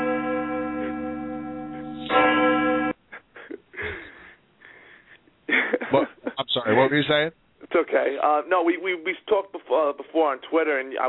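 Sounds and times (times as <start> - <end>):
church bell ringing: 0.0 - 3.0
breathy wheezing sounds: 3.4 - 5.3
speech: 6.7 - 11.0.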